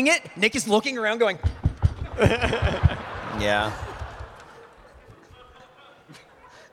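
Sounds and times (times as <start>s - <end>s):
speech: 0.0s - 1.6s, 2.2s - 3.9s
heavy footsteps stomping on a wooden stage: 1.4s - 3.1s
laughter: 1.8s - 6.7s.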